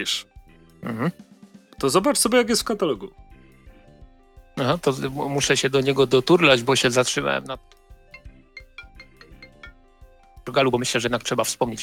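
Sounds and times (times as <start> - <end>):
speech: 0.0 - 3.2, 4.6 - 7.8, 10.5 - 11.8
melodic electronic phone ringtone: 7.6 - 10.3.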